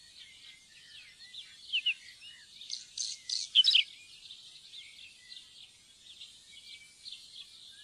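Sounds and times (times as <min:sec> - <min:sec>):
whinchat scratchy song: 0:02.7 - 0:03.9.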